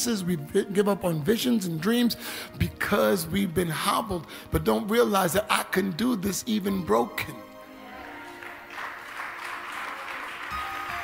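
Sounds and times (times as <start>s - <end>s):
speech: 0.0s - 7.5s
crowd applauding: 8.0s - 11.0s.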